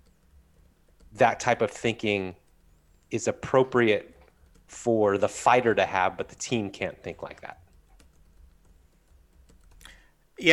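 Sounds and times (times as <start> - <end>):
typing on a computer keyboard: 0.0 - 1.2, 4.1 - 4.8, 6.1 - 10.2
low room hum: 0.0 - 10.5
speech: 1.2 - 2.4, 3.1 - 4.1, 4.7 - 7.6.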